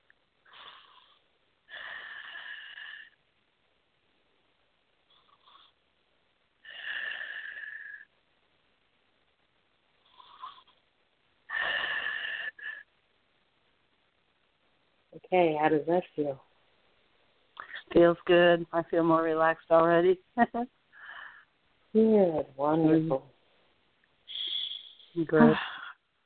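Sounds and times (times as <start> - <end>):
deep breaths during a relaxation session: 0.4 - 3.2, 6.6 - 8.1, 11.5 - 12.9, 20.9 - 21.6, 23.4 - 26.0
speech: 15.3 - 16.5, 18.0 - 20.8, 22.0 - 23.3, 25.2 - 25.7.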